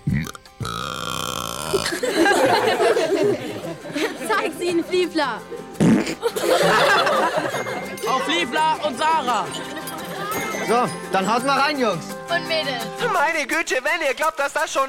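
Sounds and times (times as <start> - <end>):
fart: 0.0 - 2.0, 5.8 - 6.2
loud burp: 0.0 - 2.0, 5.8 - 6.2
laughter: 1.7 - 11.0
speech: 1.8 - 14.8.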